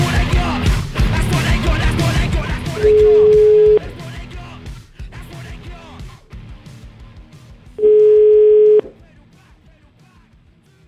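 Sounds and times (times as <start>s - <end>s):
music: 0.0s - 10.8s
telephone dial tone while a call is being placed: 2.8s - 3.8s, 7.8s - 8.9s.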